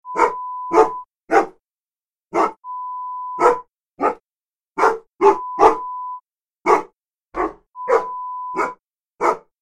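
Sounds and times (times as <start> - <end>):
dog barking: 0.1 - 1.6, 2.3 - 2.6, 3.4 - 4.2, 4.8 - 5.9, 6.6 - 9.6.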